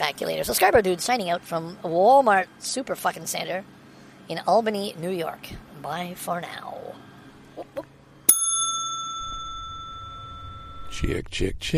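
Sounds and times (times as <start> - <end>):
speech: 0.0 - 7.9, 10.9 - 11.7
bell strike: 8.3 - 11.1.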